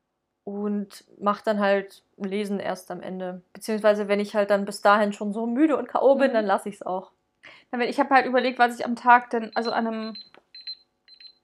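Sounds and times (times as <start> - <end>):
speech: 0.4 - 10.4
electronic alarm clock ringing: 9.5 - 11.4.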